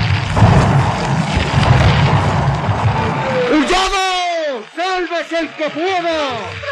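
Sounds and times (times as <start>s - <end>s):
accumulated gas explosion setting a building on fire, radio drama effect: 0.0s - 4.2s
speech: 5.4s - 6.6s.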